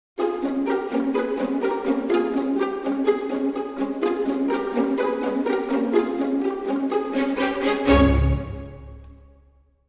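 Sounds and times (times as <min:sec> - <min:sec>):
dramedy string music sting: 0:00.2 - 0:09.5.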